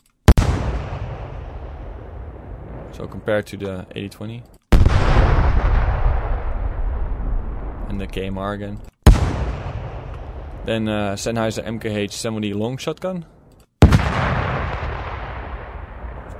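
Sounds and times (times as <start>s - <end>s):
sharp loud explosion with decaying roar: 0.3s - 3.1s, 4.8s - 8.4s, 9.1s - 10.7s, 13.8s - 16.3s
speech: 3.0s - 4.6s, 7.9s - 8.9s, 10.6s - 13.3s.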